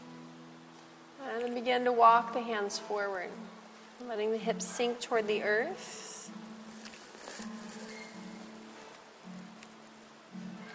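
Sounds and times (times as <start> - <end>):
soft steady rain pattering on a roof: 0.0 - 10.7
speech: 1.4 - 6.4.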